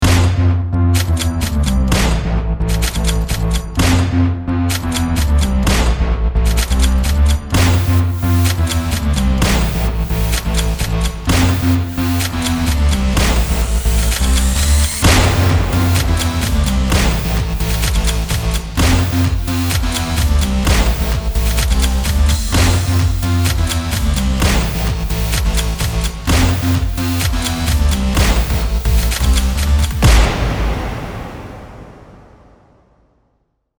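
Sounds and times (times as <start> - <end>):
house music short background track: 0.6 - 31.6
gunshot rhythm: 7.5 - 33.0.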